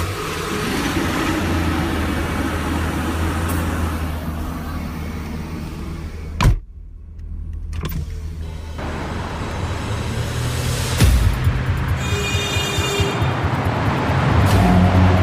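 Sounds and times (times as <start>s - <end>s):
pickup truck engine turning over and revving: 0.0s - 15.2s.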